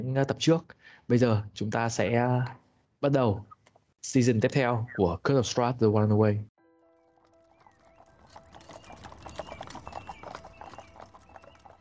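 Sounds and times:
speech: 0.0 - 6.5
horse hooves clip-clopping pulling a carriage: 7.0 - 11.7
carriage rolling noise: 7.1 - 11.7.

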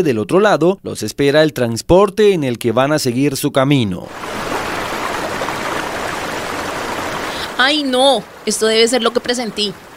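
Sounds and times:
speech: 0.0 - 4.5, 7.6 - 9.9
small river stream flowing: 4.1 - 9.9.

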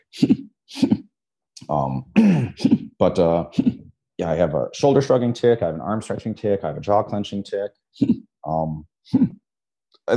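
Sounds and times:
person sniffing as a vocal tic: 0.0 - 1.1, 2.2 - 3.8
speech: 0.1 - 0.4, 1.7 - 9.4.

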